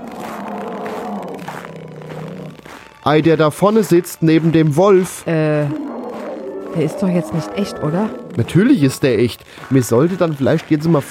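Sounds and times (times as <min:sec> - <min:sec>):
polar bear roaring in a low rough growl: 0:00.0 - 0:02.6, 0:05.5 - 0:09.0
speech: 0:03.1 - 0:05.9, 0:06.8 - 0:11.0.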